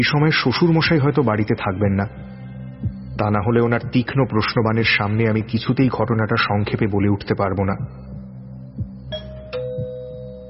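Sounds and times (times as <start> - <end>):
speech: 0.0 - 8.1
two-tone doorbell chime: 9.1 - 10.4.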